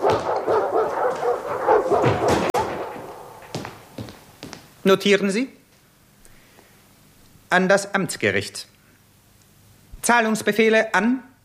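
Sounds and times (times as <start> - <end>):
dogs barking and yapping: 0.0 - 4.0
sharp thud: 1.9 - 4.2
speech: 4.8 - 5.6, 7.5 - 8.8, 10.0 - 11.3.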